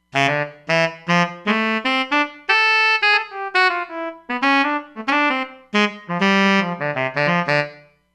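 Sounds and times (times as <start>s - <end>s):
tenor saxophone: 0.0s - 7.9s.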